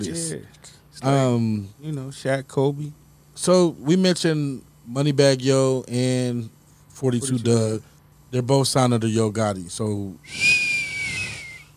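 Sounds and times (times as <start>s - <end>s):
speech: 0.0s - 10.6s
person whistling a sustained high note: 10.2s - 11.7s.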